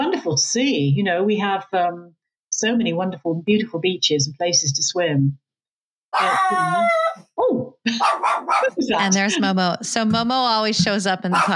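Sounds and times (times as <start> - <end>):
speech: 0.2 - 5.4, 6.1 - 11.5
small dog barking: 6.2 - 7.2, 8.0 - 8.8, 11.3 - 11.5.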